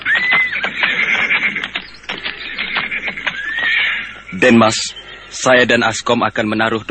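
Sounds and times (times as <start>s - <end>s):
scattered knocks possibly hooves: 0.0s - 4.8s
horse neighing: 0.0s - 4.9s
speech: 4.4s - 6.8s.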